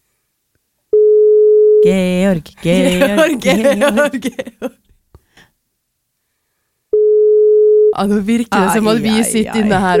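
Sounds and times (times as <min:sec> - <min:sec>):
unanswered phone ringback tone: 0:01.0 - 0:01.8, 0:07.0 - 0:07.9
speech: 0:01.8 - 0:04.9, 0:08.0 - 0:09.9.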